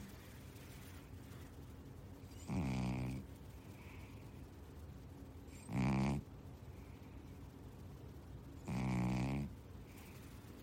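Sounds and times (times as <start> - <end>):
relaxed male pet cat snoring while asleep: 2.4 - 3.2, 5.5 - 6.2, 8.6 - 9.5.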